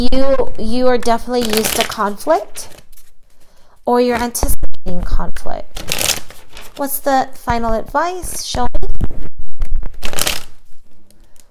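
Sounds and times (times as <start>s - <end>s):
speech: 0.0s - 2.8s, 3.9s - 6.2s, 6.8s - 9.3s
riffle of tarot cards being shuffled: 1.4s - 3.5s, 5.8s - 6.9s, 8.2s - 11.4s.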